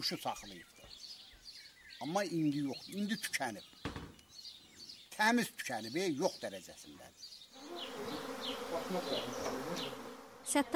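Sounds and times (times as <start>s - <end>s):
speech: 0.0s - 1.0s, 2.0s - 4.0s, 5.2s - 8.1s, 8.7s - 10.7s
honey bees buzzing: 7.2s - 10.7s.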